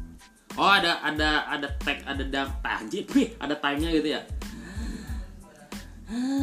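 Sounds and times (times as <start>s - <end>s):
speech: 0.6s - 4.4s, 6.1s - 6.4s
person imitating wheezy asthmatic labored breathing: 4.4s - 6.4s.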